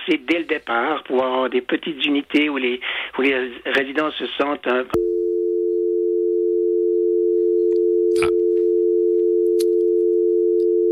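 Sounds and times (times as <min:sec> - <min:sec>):
speech: 0:00.1 - 0:05.1
telephone tone after a dropped call: 0:05.0 - 0:10.8.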